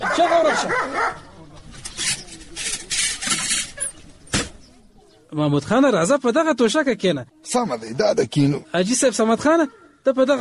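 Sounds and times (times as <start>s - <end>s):
dog barking: 0.0s - 1.3s
speech: 0.0s - 1.3s, 5.3s - 10.4s.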